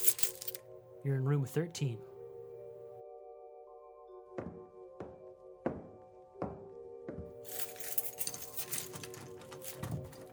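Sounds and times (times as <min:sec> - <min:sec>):
keys jingling while being handed over at a hotel: 0:00.0 - 0:00.6, 0:07.5 - 0:10.3
speech: 0:01.0 - 0:02.1.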